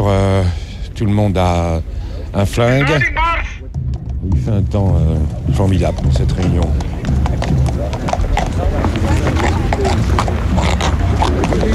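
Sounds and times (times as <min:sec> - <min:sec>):
speech: 0:00.1 - 0:03.2, 0:04.2 - 0:08.2, 0:09.0 - 0:11.7
ridden horse hooves clip-clopping at an AWB meeting in fine weather: 0:05.0 - 0:11.7.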